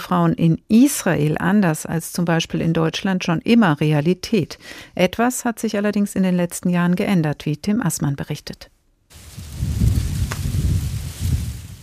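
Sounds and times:
speech: 0.1 - 8.8
light gusting wind over a hill above the Jordan Valley buffeting the microphone: 9.1 - 11.8.

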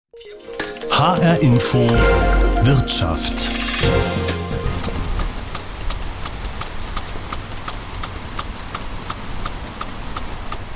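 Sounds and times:
speech: 0.2 - 4.2
rotating impact sprinkler ticking: 4.7 - 10.7.

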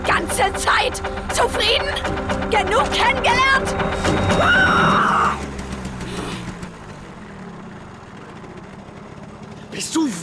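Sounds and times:
car engine idling after sudden braking: 0.0 - 10.2
speech: 0.4 - 5.4, 9.8 - 10.2.

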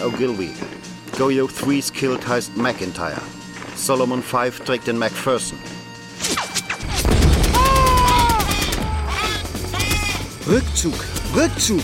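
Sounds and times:
speech: 0.0 - 6.3, 10.4 - 11.8
heavy booming rocket impacts and rumbling explosions: 6.8 - 9.2
machine-gun fire: 6.8 - 9.2.

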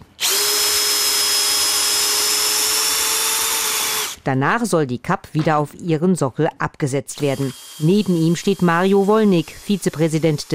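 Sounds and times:
cordless screwdriver backing out screws from wooden parts: 0.2 - 4.2, 7.2 - 10.4
speech: 4.2 - 10.5.

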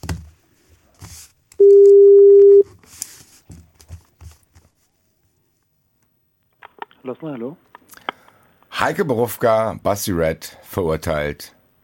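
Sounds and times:
telephone tone during a call: 1.6 - 2.6
speech: 7.2 - 7.7, 8.8 - 11.6.

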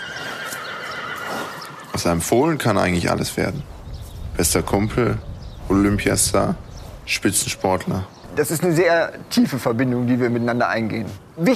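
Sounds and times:
horse whinnying: 0.0 - 2.3
speech: 2.0 - 3.7, 4.4 - 11.5.

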